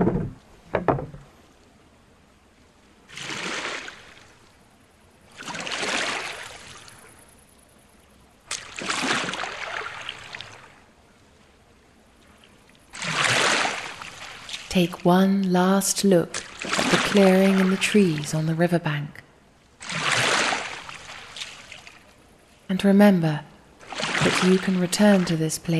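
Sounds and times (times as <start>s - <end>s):
brief knock: 0.0s - 1.2s
canoe paddle dipping and pulling through river water: 0.0s - 1.8s, 2.6s - 4.6s, 5.2s - 7.3s, 8.4s - 15.3s, 16.1s - 18.6s, 19.7s - 22.7s, 23.7s - 25.4s
speech: 14.8s - 19.2s, 22.7s - 23.5s, 24.2s - 25.7s.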